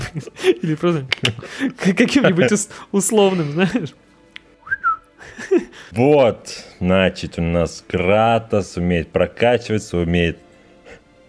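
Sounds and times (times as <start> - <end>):
laughter: 0.0 - 3.9, 5.2 - 6.0
speech: 0.2 - 4.1, 5.3 - 10.4
person whistling short sliding notes: 4.6 - 5.1.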